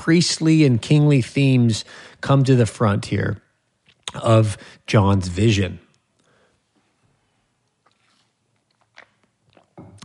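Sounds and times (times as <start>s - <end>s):
speech: 0.0s - 3.4s, 4.1s - 5.8s
soft wet mouth clicks: 3.9s - 4.2s, 7.6s - 10.0s
person sipping water: 7.5s - 10.0s
swallowing: 7.7s - 10.0s.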